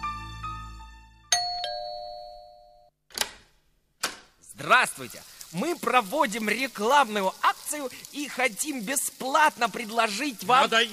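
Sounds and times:
doorbell ding-dong chime: 1.3 - 2.9
speech: 4.6 - 10.9.

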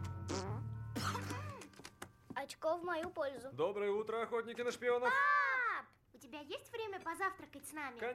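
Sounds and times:
baby farting in low buzzy blasts: 0.2 - 1.7
speech: 2.4 - 5.4, 6.2 - 8.1.

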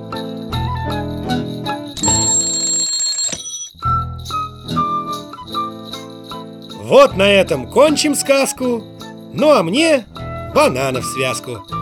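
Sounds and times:
bright tinkling instrumental music: 0.0 - 11.8
loud rattling alarm clock bell ringing: 2.0 - 3.9
speech: 6.9 - 11.8.

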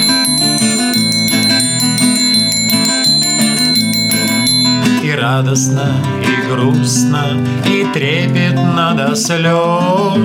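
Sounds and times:
bells of a white church bell tower ringing an evening chime: 0.0 - 4.9
speech: 5.3 - 10.2.

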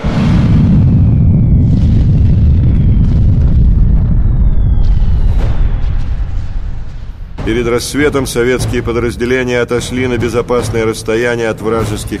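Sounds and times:
TNT explosion in an underground mine chamber: 0.0 - 8.2
speech: 7.5 - 12.1.

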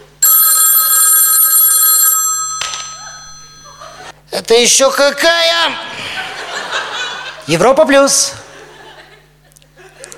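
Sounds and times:
telephone bell trill in an apartment: 0.2 - 4.1
laughter: 3.0 - 4.2, 5.8 - 10.1
speech: 4.4 - 6.0, 7.5 - 8.4.

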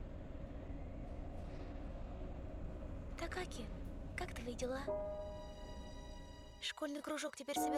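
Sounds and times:
train carriage rolling along the rails heard from inside: 0.0 - 5.0
speech: 3.2 - 5.2, 6.6 - 7.7.

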